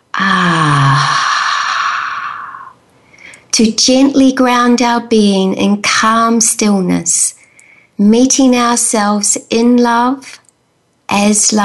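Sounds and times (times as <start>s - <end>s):
long voiced exhale like a deep relaxing sigh during guided breathing: 0.2s - 2.8s
speech: 3.6s - 7.4s, 8.0s - 10.4s, 11.1s - 11.6s.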